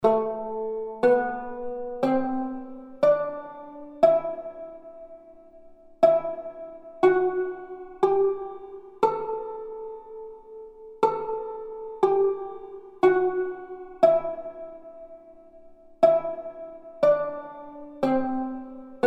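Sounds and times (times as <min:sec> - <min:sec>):
tanbur playing in makam hüseyni muhayyer: 0:00.0 - 0:19.0.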